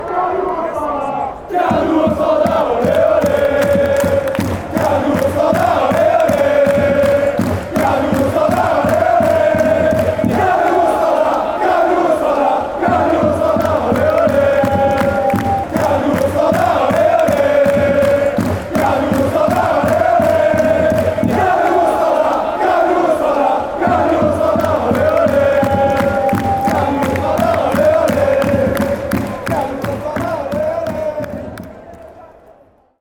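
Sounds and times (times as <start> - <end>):
crowd chanting: 0.0 - 32.2.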